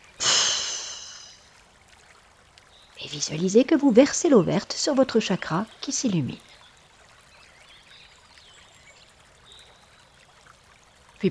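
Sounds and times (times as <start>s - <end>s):
long airy breath during a guided chakra meditation: 0.2s - 1.4s
speech: 3.0s - 6.5s.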